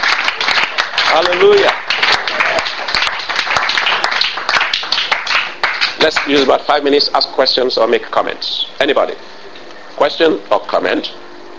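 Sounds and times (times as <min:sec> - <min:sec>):
crowd clapping and applauding: 0:00.0 - 0:06.6
speech: 0:01.2 - 0:01.9, 0:06.0 - 0:09.3, 0:10.0 - 0:11.2.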